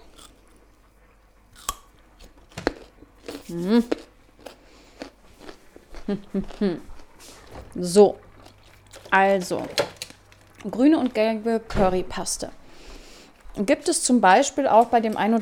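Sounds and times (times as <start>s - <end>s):
crisp crunchy bites into a raw carrot: 0.0s - 0.6s, 1.6s - 6.6s
chewing crunches of raw carrot: 0.0s - 0.8s, 1.5s - 7.2s, 8.3s - 10.7s
speech: 3.5s - 4.0s, 6.1s - 6.9s, 7.7s - 8.2s, 9.1s - 10.0s, 10.6s - 12.6s, 13.6s - 15.4s.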